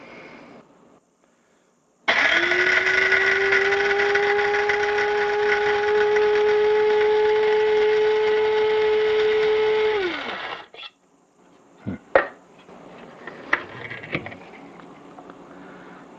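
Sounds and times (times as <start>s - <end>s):
grinder running on a coarse grind: 2.1s - 10.7s.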